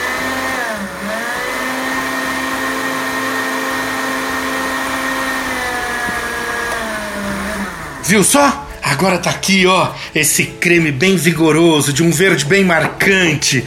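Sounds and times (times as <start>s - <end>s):
electric blender running at high speed blending thick cream: 0.0s - 8.3s
speech: 8.1s - 13.6s.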